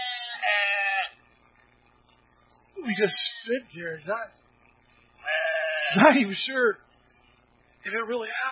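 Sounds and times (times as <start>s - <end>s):
loud drawn-out sheep bleat: 0.0s - 1.2s, 2.8s - 3.8s, 5.2s - 6.2s
speech: 0.4s - 0.7s, 2.8s - 4.4s, 5.9s - 6.8s, 7.8s - 8.4s.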